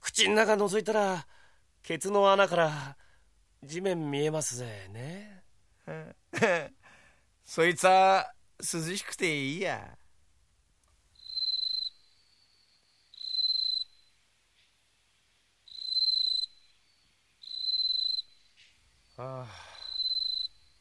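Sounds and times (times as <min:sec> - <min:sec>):
speech: 0:00.2 - 0:03.0, 0:03.6 - 0:06.8, 0:07.5 - 0:10.0, 0:19.2 - 0:19.6
bell crickets chirping: 0:11.2 - 0:20.7.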